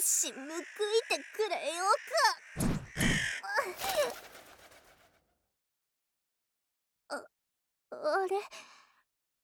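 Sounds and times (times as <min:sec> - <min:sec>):
speech: 0:00.2 - 0:02.7, 0:08.3 - 0:08.7
crows cawing: 0:00.2 - 0:03.8.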